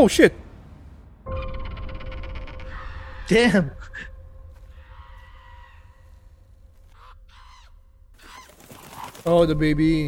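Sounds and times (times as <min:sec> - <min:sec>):
speech: 0:00.0 - 0:00.4, 0:03.3 - 0:04.1, 0:09.2 - 0:10.0
steady droning background: 0:00.4 - 0:08.2
bird cawing: 0:01.5 - 0:09.3.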